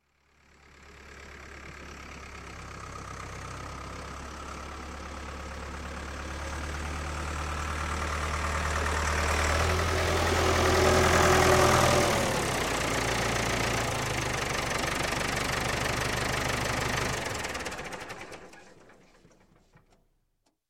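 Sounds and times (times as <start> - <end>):
diesel tractor pulling up and shutting off: 0.4 - 20.0.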